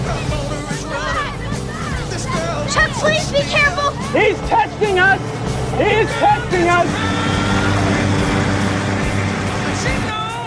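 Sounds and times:
truck engine and road noise rumbling: 0.0 - 10.4
speech: 4.1 - 7.4.

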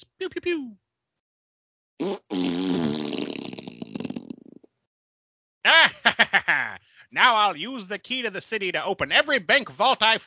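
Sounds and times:
speech: 0.0 - 0.8, 7.1 - 10.2
sputtering fart sound effect: 2.0 - 4.6
laughter: 5.7 - 6.8.

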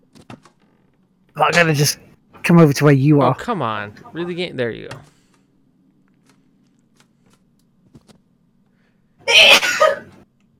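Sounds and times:
speech: 1.4 - 5.1
person sneezing: 9.2 - 10.1.

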